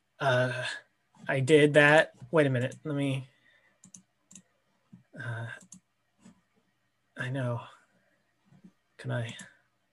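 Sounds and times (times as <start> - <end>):
speech: 0.2 - 3.3, 7.2 - 7.8, 9.0 - 9.5
computer mouse clicking: 3.8 - 5.0, 5.6 - 6.4.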